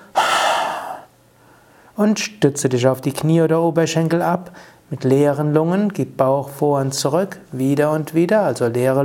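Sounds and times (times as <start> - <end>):
breathy exhale through the mouth during a breathing exercise: 0.0 - 1.9
speech: 2.0 - 9.0.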